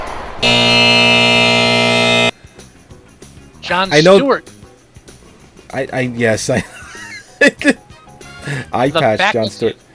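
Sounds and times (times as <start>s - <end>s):
game timer buzzer blaring as time runs out in a guessing game: 0.4s - 2.3s
speech: 3.8s - 4.5s, 5.7s - 6.8s, 7.4s - 7.8s, 8.5s - 9.8s.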